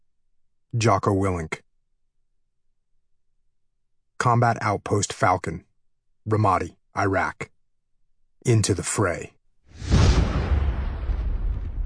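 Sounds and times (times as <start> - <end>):
speech: 0.7 - 1.6, 4.2 - 5.7, 6.3 - 7.5, 8.4 - 9.9
massive explosion at a combat outpost in Ramadi, Iraq: 9.7 - 11.8.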